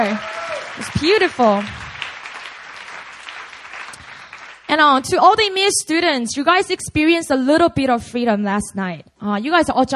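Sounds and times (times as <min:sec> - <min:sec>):
speech: 0:00.0 - 0:01.8, 0:04.7 - 0:09.9
crowd applauding: 0:00.0 - 0:04.7.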